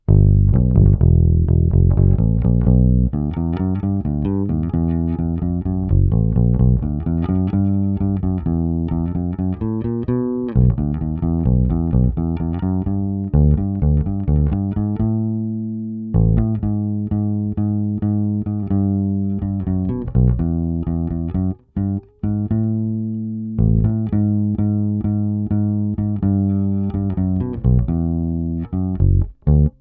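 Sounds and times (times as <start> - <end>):
Jay Turser Precision bass with original pickup and tone open, flatwound strings: 0.0 - 29.7.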